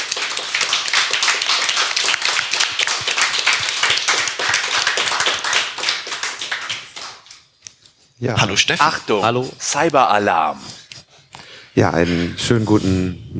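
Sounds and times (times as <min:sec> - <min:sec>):
crowd applauding with dense continuous hand clapping: 0:00.0 - 0:07.4
speech: 0:08.2 - 0:10.7, 0:11.8 - 0:13.3.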